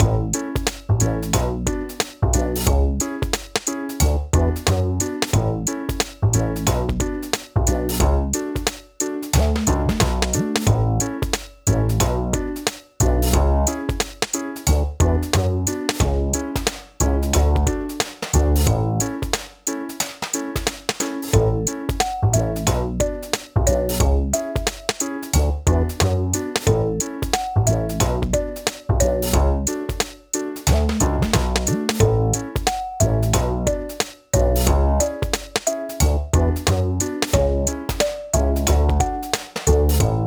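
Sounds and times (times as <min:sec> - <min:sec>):
casual menu piano loop game music: 0:00.0 - 0:40.2.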